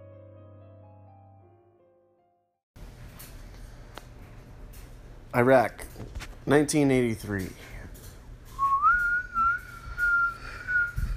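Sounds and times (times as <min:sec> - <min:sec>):
speech: 0:05.3 - 0:07.7
wind whistling between mountain peaks: 0:08.6 - 0:11.1.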